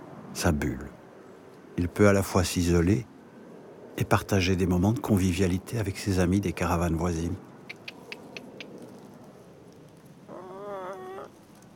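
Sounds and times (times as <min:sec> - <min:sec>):
quiet outdoor noise: 0:00.0 - 0:11.7
speech: 0:00.4 - 0:00.9, 0:01.8 - 0:03.1, 0:04.0 - 0:07.5
faint quick ticking: 0:07.6 - 0:09.0
hen clucking: 0:10.3 - 0:11.4.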